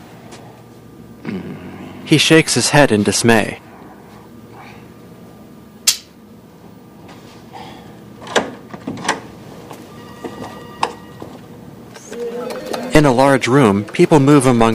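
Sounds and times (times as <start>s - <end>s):
low steady room hum: 0.0s - 14.7s
speech: 1.3s - 3.6s, 13.3s - 14.7s
double door clunking open: 8.2s - 9.3s.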